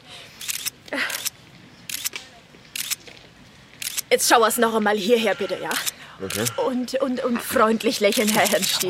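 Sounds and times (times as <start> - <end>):
camera shutters clicking as photographers take pictures: 0.4 - 3.0, 3.8 - 4.1, 5.8 - 6.5, 8.0 - 8.8
speech: 4.1 - 8.8.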